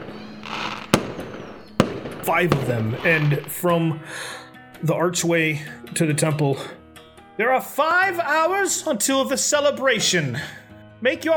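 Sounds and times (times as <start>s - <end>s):
single sharp firework bang: 0.0s - 3.5s
speech: 2.3s - 6.8s, 7.4s - 11.3s.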